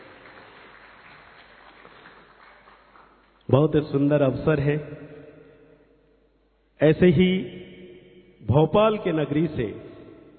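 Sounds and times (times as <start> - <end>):
audience at a stage event applauding: 0.0 - 3.4
speech: 3.5 - 5.1, 6.8 - 7.7, 8.4 - 9.8.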